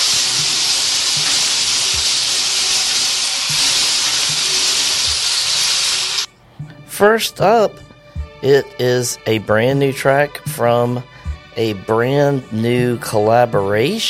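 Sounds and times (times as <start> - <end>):
shuffle drum spinning with whooshing hiss: 0.0 - 6.2
speech: 7.0 - 7.8, 8.4 - 14.0.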